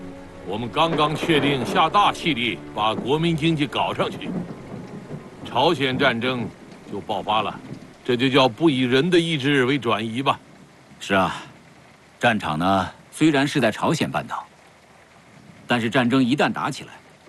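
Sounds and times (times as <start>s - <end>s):
thunder rumbling: 0.0s - 11.1s
steady rain: 0.0s - 17.2s.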